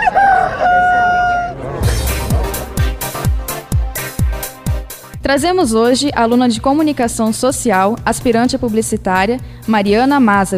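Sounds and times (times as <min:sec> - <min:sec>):
rooster crowing: 0:00.0 - 0:03.2
thumping drum beat: 0:01.8 - 0:05.4
speech: 0:05.3 - 0:10.5.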